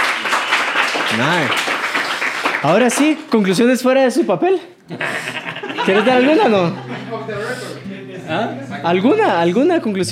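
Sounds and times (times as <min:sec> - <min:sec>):
crowd applauding: 0:00.0 - 0:03.4
speech: 0:01.1 - 0:01.7, 0:02.6 - 0:10.0
laughter: 0:04.9 - 0:07.8.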